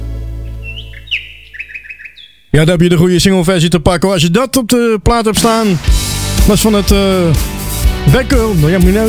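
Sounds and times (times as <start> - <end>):
bright bird chirps and short whistled tweets: 0.2 - 3.7
speech: 2.5 - 7.5, 8.1 - 9.0.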